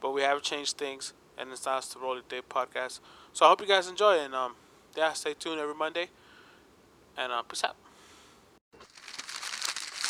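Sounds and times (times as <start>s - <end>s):
speech: 0.0s - 6.2s, 7.2s - 7.9s
sheet of paper crinkled and handled: 8.8s - 10.0s.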